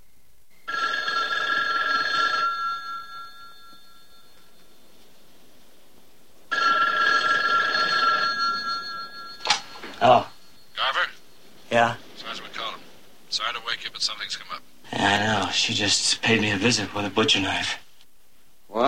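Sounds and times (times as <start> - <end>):
telephone ringing with a trilling bell tone: 0.6 - 5.2, 6.5 - 14.3
speech: 13.8 - 17.8.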